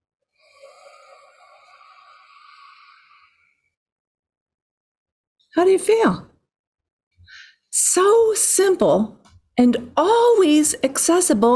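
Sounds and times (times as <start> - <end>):
slow exhale through pursed lips: 0.4 - 3.8
speech: 5.5 - 6.3, 7.8 - 11.5.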